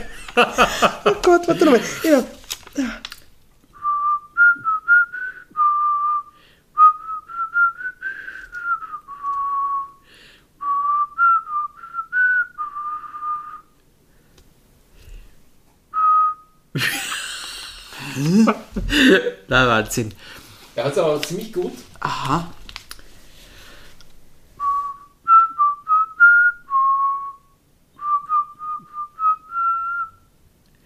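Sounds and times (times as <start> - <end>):
laughter: 0.0 - 3.0, 16.8 - 19.4
speech: 0.4 - 3.1, 19.6 - 22.6
person whistling a melody: 3.8 - 10.0, 10.6 - 13.8, 15.9 - 16.6, 24.6 - 30.3.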